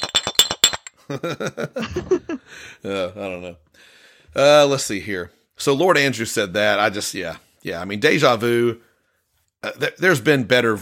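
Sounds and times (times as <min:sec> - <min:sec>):
glass bottle clinking against a shot glass: 0:00.0 - 0:01.0
speech: 0:01.1 - 0:08.9, 0:09.6 - 0:10.8.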